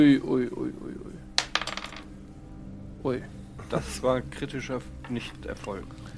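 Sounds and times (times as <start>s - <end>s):
speech: 0.0s - 1.1s, 3.0s - 6.1s
dice clattering onto a hard surface: 1.4s - 2.1s.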